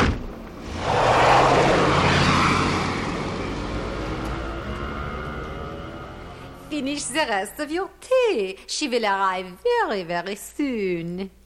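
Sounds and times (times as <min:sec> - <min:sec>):
taxi car engine roaring as it speeds off in pursuit: 0:00.5 - 0:07.5
speech: 0:06.8 - 0:11.4.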